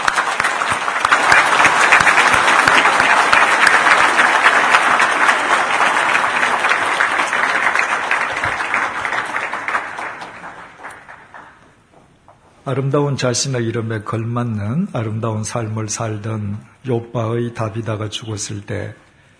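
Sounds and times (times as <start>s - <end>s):
audience applauding to welcome a pastor: 0.0s - 12.1s
speech: 12.7s - 19.0s.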